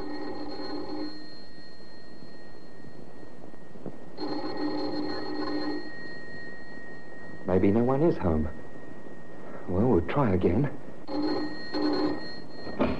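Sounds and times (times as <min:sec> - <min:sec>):
doorbell buzzing ring: 0:00.0 - 0:12.9
speech: 0:07.5 - 0:08.6, 0:09.7 - 0:11.3.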